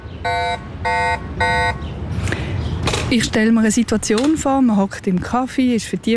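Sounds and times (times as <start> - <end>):
bicycle anti-theft alarm electronic beeps: 0.2 - 1.8
speech: 3.1 - 6.1.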